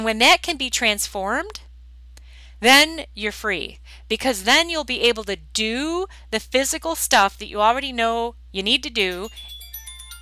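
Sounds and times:
speech: 0.0 - 1.7, 2.6 - 9.5
phone alarm ringtone of bright electronic tones: 9.2 - 10.2.

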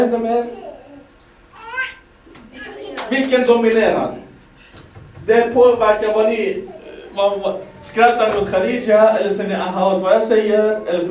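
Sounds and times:
speech: 0.0 - 0.7, 3.1 - 4.3, 5.3 - 11.0
baby babbling: 0.4 - 3.1, 6.6 - 8.2.

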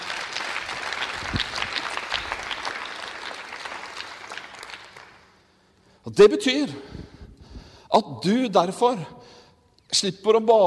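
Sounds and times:
audience applause: 0.0 - 5.4
speech: 6.0 - 6.9, 7.9 - 9.2, 9.9 - 10.6.

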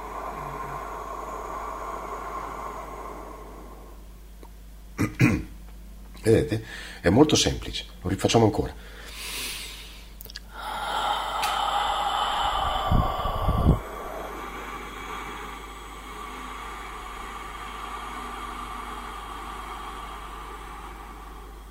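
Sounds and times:
forceful unvoiced breath exhaled during a breathing exercise: 0.0 - 4.2, 8.9 - 21.6
low puffs of air: 0.0 - 4.7, 9.0 - 21.6
speech: 6.2 - 9.0.

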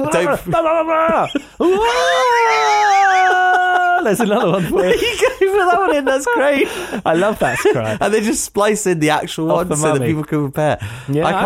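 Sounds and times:
speech: 0.0 - 2.9, 4.0 - 11.4
man imitating a dramatic movie scream: 0.0 - 4.3
laughter: 0.0 - 8.2.

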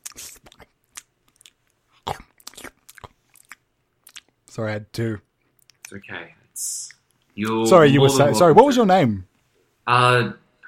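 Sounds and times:
crunchy chewing of food: 0.0 - 4.3
speech: 4.6 - 5.3, 5.9 - 6.8, 7.4 - 9.3, 9.9 - 10.4.

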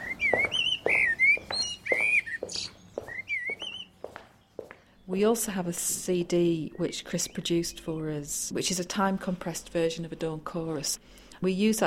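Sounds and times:
blackbird singing: 0.0 - 5.2, 6.6 - 7.9
speech: 5.1 - 11.8.

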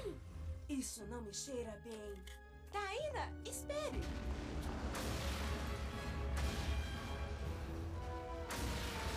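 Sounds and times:
speech: 0.1 - 4.7
cartoon-style explosion effects: 3.9 - 9.1
crashing debris: 4.0 - 9.1.

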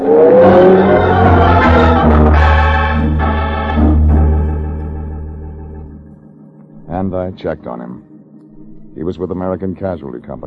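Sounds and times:
car engine revving and driving away: 0.0 - 6.0
speech: 7.1 - 8.1, 9.0 - 10.4.

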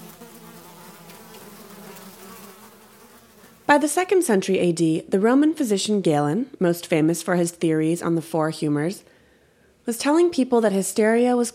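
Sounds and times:
buzzing insects: 0.0 - 3.8
speech: 3.7 - 9.2, 9.8 - 11.5.

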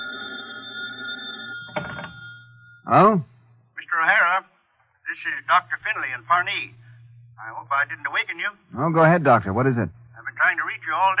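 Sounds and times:
telephone ringing with a trilling tone: 0.0 - 3.0
speech: 2.9 - 3.3, 5.2 - 6.8, 7.4 - 11.1.

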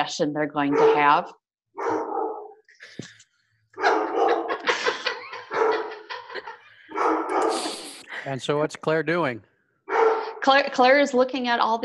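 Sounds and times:
speech: 0.0 - 2.0, 7.5 - 9.5, 10.4 - 11.8
dog barking in sharp yappy barks: 0.6 - 2.6, 3.8 - 4.6, 5.3 - 7.7, 9.9 - 10.4
dog whining yips: 0.7 - 1.2, 1.8 - 2.6, 3.8 - 4.6, 5.3 - 6.1, 6.9 - 7.7, 9.9 - 10.4
laughter: 3.8 - 9.4.

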